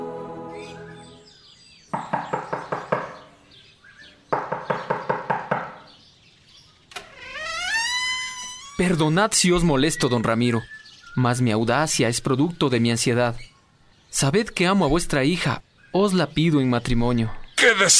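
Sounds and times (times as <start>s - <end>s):
sharp loud knocking on a wooden house door early in the morning: 1.9s - 3.2s, 4.3s - 5.9s
speech: 8.8s - 13.5s, 14.1s - 17.9s.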